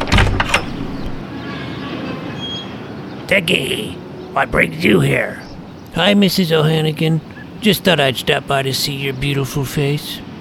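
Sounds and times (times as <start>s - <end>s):
front door opening: 0.0s - 1.2s
speech: 3.3s - 10.2s.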